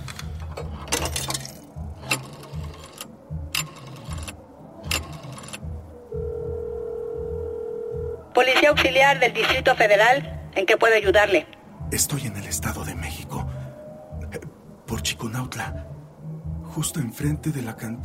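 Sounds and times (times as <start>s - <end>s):
low rumbling background: 0.0s - 18.0s
telephone line ringing with a steady electronic tone in Chiconautla: 2.1s - 8.2s
speech: 8.4s - 12.7s, 15.4s - 16.0s, 16.8s - 18.0s.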